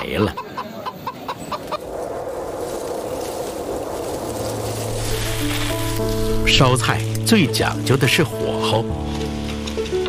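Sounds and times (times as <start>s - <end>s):
speech: 0.0s - 0.5s, 6.5s - 9.6s
four-year-old rooster clucking at a morning market: 0.0s - 1.8s
broad noise at a busy morning market: 0.0s - 7.8s
low hum: 1.8s - 7.8s.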